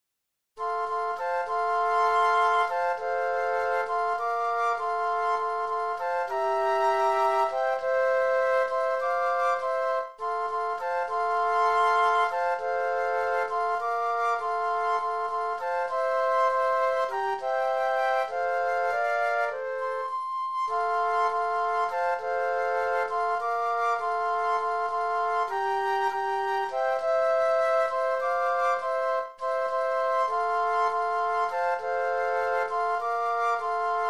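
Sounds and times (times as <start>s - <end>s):
flute trio playing: 0.6s - 34.0s.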